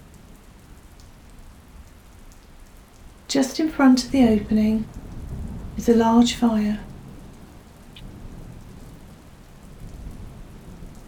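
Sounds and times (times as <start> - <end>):
steady heavy rain: 0.0 - 11.0
speech: 3.3 - 5.0, 5.8 - 6.9
low thunder rumbling: 3.4 - 11.0.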